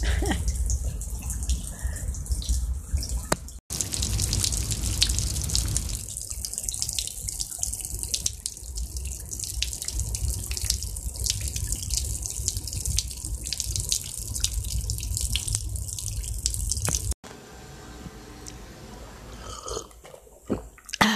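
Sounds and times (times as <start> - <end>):
heavy drips and splashes: 0.0 - 17.2
steady rain falling at night: 0.0 - 17.2.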